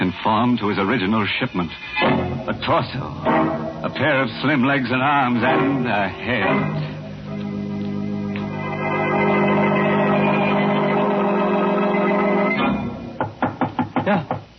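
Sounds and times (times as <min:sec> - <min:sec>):
speech: 0:00.2 - 0:06.9
sustained eerie musical drone: 0:02.0 - 0:13.2
firm loud knocks on an alley door: 0:13.2 - 0:14.5.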